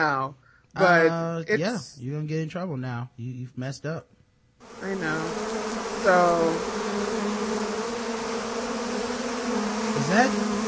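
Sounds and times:
speech: 0.0 - 6.8, 10.0 - 10.5
bees buzzing around a beehive: 4.6 - 10.6.

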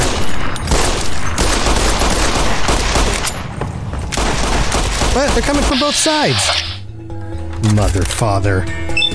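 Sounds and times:
video game gunfire in dense rapid bursts: 0.0 - 3.2, 4.2 - 5.9
speech: 5.2 - 6.7, 7.7 - 9.0.

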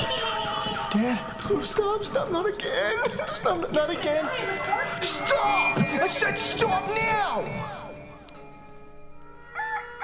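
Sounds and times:
speech: 0.9 - 7.8
rooster crowing: 9.4 - 10.0.

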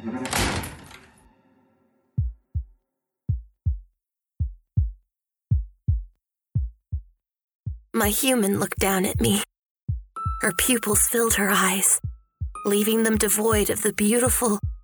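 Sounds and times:
door slamming shut: 0.0 - 1.3
heartbeat of paired low thumps: 2.2 - 14.8
speech: 8.0 - 9.5, 10.4 - 14.6.

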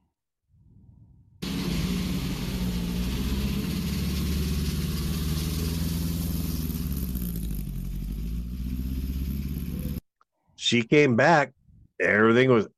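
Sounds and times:
welded car engine running on a practice drive around a course: 1.4 - 10.0
speech: 10.7 - 12.7.

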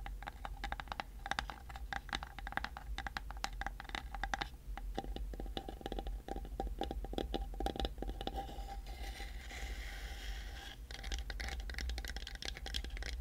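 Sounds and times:
quick tapping and scratching with sharp clicks: 0.0 - 8.5, 10.8 - 13.1
low steady hum: 0.0 - 13.1
soft hissing scrape: 8.4 - 10.8.

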